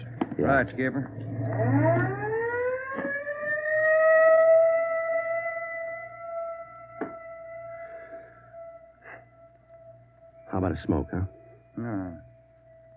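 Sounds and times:
low rumble: 0.0 - 2.3
ambulance siren wailing: 0.2 - 12.9
speech: 0.4 - 2.2, 10.6 - 12.3
sharp knocks: 2.9 - 3.3, 7.0 - 7.3.

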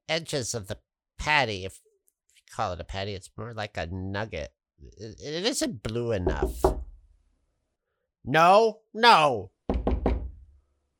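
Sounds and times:
speech: 0.1 - 1.8, 2.5 - 6.8, 8.2 - 9.6
firm knocks on a wooden door: 6.2 - 7.0, 9.7 - 10.4.

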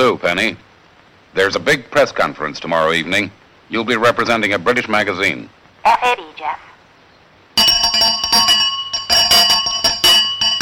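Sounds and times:
speech: 0.0 - 0.7, 1.3 - 6.7
hand bell ringing to summon a butler: 7.6 - 10.6.

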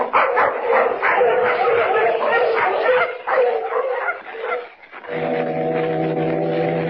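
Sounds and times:
pack of sled dogs barking and yipping: 0.0 - 5.1
droning low foghorn tone: 5.1 - 6.8.

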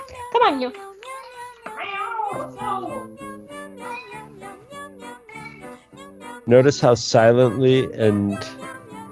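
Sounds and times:
speech: 0.4 - 0.9, 1.8 - 3.2, 6.5 - 8.6
female cat meowing to be let out of the room: 1.7 - 3.1, 3.8 - 4.2.

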